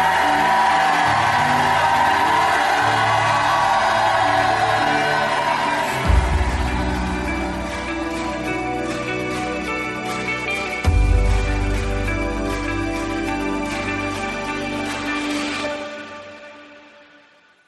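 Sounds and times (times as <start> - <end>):
whoops from the audience: 0.0 - 10.1
large audience shouting and cheering: 0.0 - 16.0.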